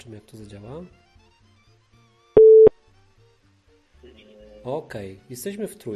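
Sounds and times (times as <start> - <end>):
speech: 0.0 - 1.0, 4.0 - 5.9
incoming phone call electronic beep: 2.4 - 2.7.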